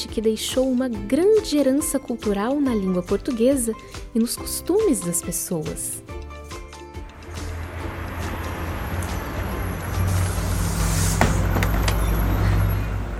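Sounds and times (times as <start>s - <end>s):
speech: 0.1s - 6.2s
road noise: 6.8s - 13.1s
bus engine rumbling heard from inside in traffic: 7.0s - 13.1s
bus rattles and hisses: 9.9s - 11.8s.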